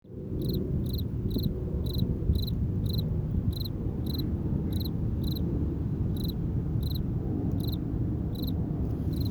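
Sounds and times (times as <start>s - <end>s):
crickets chirping by a highway: 0.4s - 5.4s, 6.2s - 9.3s.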